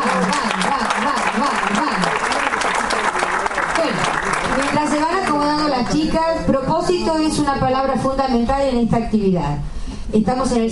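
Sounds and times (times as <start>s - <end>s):
crowd applause: 0.0s - 5.9s
speech: 5.9s - 10.7s.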